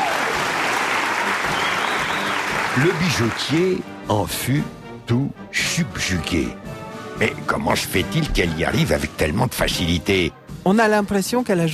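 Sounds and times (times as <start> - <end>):
audience applause: 0.0 - 3.8
speech: 2.8 - 6.6, 7.2 - 11.7.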